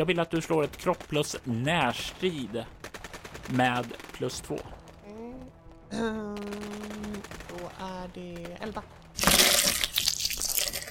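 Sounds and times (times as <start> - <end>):
speech: 0.0 - 2.8, 3.5 - 4.8, 5.9 - 6.8, 7.7 - 9.4
statuette crushing a bone fragment: 9.2 - 10.8.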